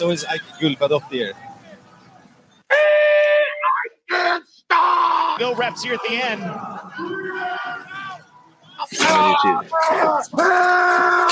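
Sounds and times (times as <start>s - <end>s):
speech: 0.0s - 1.5s, 5.4s - 8.0s, 8.8s - 11.3s
crowd of family members screaming and shouting: 2.7s - 11.3s.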